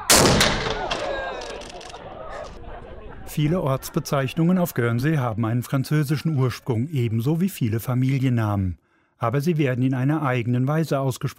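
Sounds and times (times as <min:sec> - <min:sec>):
old museum cannon firing a blank gunpowder charge: 0:00.0 - 0:01.8
long rumbling roar and rolling echo of cannon blast: 0:00.0 - 0:03.3
laughter: 0:00.7 - 0:06.7
speech: 0:03.4 - 0:11.3.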